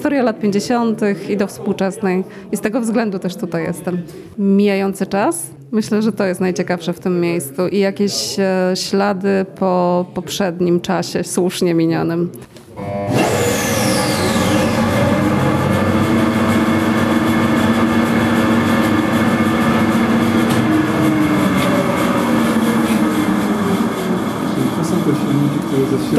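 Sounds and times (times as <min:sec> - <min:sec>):
speech: 0:00.0 - 0:13.2
large ventilation fan electric motor running with a droning hum: 0:12.7 - 0:26.1.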